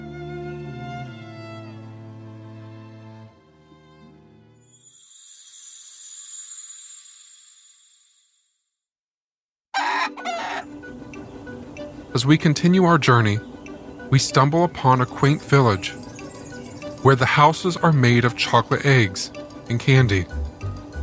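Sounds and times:
rooster crowing: 0:09.7 - 0:10.8
chickens clucking and squawking: 0:09.8 - 0:11.4
speech: 0:12.2 - 0:13.5, 0:14.1 - 0:16.0, 0:17.0 - 0:20.5.

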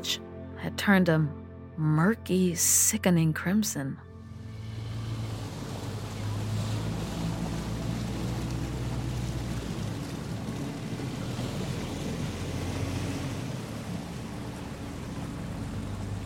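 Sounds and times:
speech: 0:00.0 - 0:04.1
ferry engine droning: 0:03.7 - 0:16.2
water washing and hissing around a ferry: 0:04.3 - 0:16.2.

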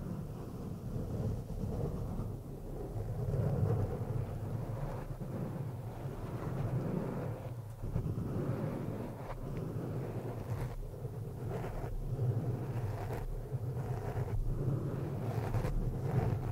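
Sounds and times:
scratching on a microphone: 0:00.2 - 0:16.5
brief brighter scrapes and clicks on a microphone: 0:12.6 - 0:16.5.

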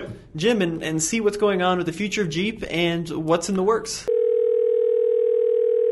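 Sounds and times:
speech: 0:00.4 - 0:04.2
telephone dial tone as a phone call is placed: 0:04.1 - 0:05.8.

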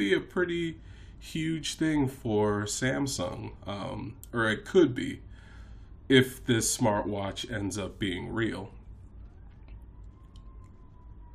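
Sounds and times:
speech: 0:00.0 - 0:05.3, 0:06.1 - 0:08.8
broad low background rumble: 0:00.1 - 0:11.3
faint sirens wailing: 0:07.4 - 0:11.3.

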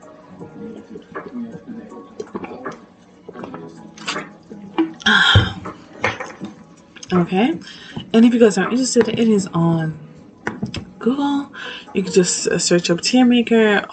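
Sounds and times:
speech: 0:00.4 - 0:05.3, 0:07.1 - 0:10.0, 0:11.0 - 0:13.9
person sipping water from a glass: 0:00.8 - 0:06.5
soft mouth and swallowing noises: 0:00.9 - 0:05.8.

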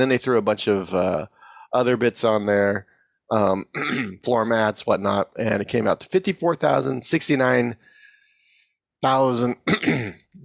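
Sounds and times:
speech: 0:00.0 - 0:07.9, 0:09.0 - 0:10.4
man clearing phlegm from throat: 0:03.7 - 0:04.2, 0:09.6 - 0:10.4.

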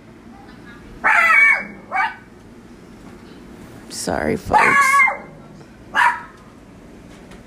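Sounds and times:
dog barking: 0:01.0 - 0:02.3, 0:04.5 - 0:06.4
speech: 0:04.0 - 0:05.1.

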